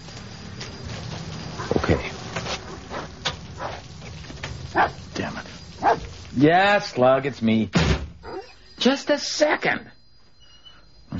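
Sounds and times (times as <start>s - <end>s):
steady buzzing hiss of noise: 0.0s - 11.1s
dog barking: 4.7s - 5.0s, 5.8s - 6.1s
speech: 6.4s - 7.8s, 8.8s - 9.9s.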